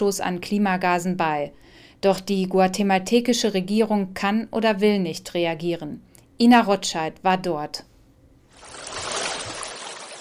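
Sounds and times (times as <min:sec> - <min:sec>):
speech: 0:00.0 - 0:07.9
slow murky stream gurgling through a small town in Guatemala: 0:08.5 - 0:10.2.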